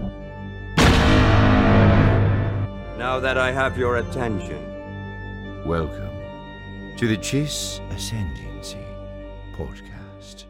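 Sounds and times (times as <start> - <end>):
gunfire sound effect blast: 0.8 - 2.8
speech: 3.0 - 4.7, 5.6 - 6.1, 7.0 - 8.9, 9.6 - 10.4.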